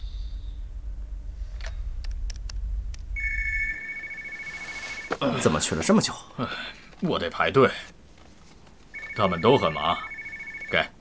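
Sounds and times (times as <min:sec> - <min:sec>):
low hum: 0:00.0 - 0:10.9
brief electronic tone of a phone call being placed: 0:03.2 - 0:05.2, 0:08.9 - 0:10.8
speech: 0:05.2 - 0:08.0, 0:09.2 - 0:10.1, 0:10.7 - 0:10.9.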